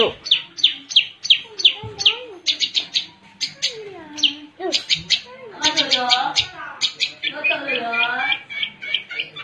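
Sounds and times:
long-tailed shrike singing: 0:00.0 - 0:09.4.

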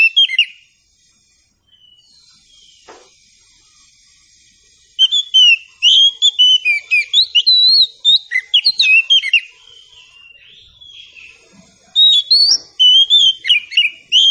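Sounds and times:
Oriental Magpie-Robin singing varied whistles and quick chirps: 0:00.0 - 0:00.7, 0:01.6 - 0:02.9, 0:05.0 - 0:14.2.

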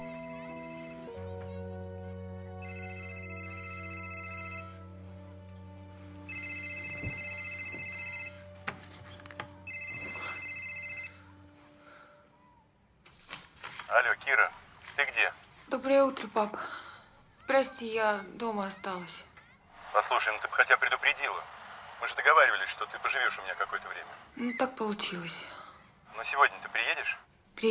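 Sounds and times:
mobile phone ringtone on a bedside table: 0:00.0 - 0:01.4, 0:02.6 - 0:05.0, 0:06.3 - 0:08.6, 0:09.6 - 0:11.5
speech: 0:14.0 - 0:16.8, 0:17.5 - 0:19.3, 0:19.9 - 0:25.5, 0:26.2 - 0:27.6.

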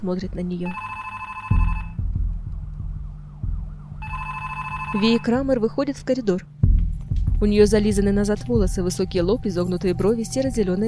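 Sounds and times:
speech: 0:00.0 - 0:00.9, 0:04.9 - 0:06.6, 0:07.4 - 0:10.8
telephone ringing on a table in short electronic bursts: 0:00.6 - 0:02.0, 0:04.0 - 0:05.4
low thumps: 0:01.9 - 0:04.0, 0:06.6 - 0:09.3.

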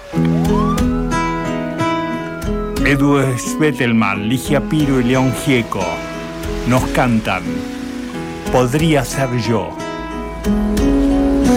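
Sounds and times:
siren-like wail opening a tango song: 0:00.0 - 0:06.1
sustained instrumental tones played by tango musicians: 0:00.0 - 0:10.8
speech: 0:02.9 - 0:07.7, 0:08.5 - 0:09.8, 0:10.4 - 0:11.0.

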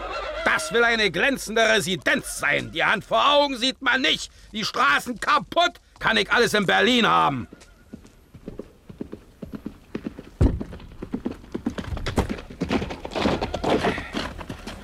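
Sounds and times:
speech: 0:00.6 - 0:07.6
horse hooves clip-clopping on a road near a city gate: 0:01.7 - 0:14.8.

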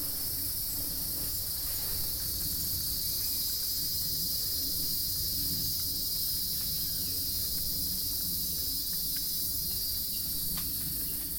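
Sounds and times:
cicadas buzzing in summer in Itanhangá Rio de Janeiro Brazil: 0:00.0 - 0:11.3
faint ticks and clicks: 0:05.4 - 0:11.3.

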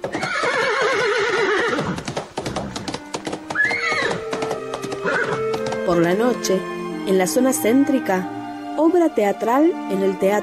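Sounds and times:
horses whinnying and neighing at a horse race on the outskirts of Buenos Aires: 0:00.0 - 0:05.7
horse hooves clattering at a horse race: 0:00.0 - 0:06.7
speech: 0:05.9 - 0:10.4.

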